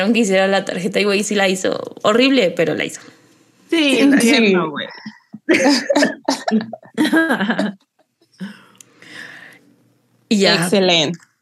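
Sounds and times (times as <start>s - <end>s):
speech: 0.0s - 8.6s, 10.3s - 11.3s
person coughing: 5.0s - 7.7s
laughter: 5.0s - 8.0s.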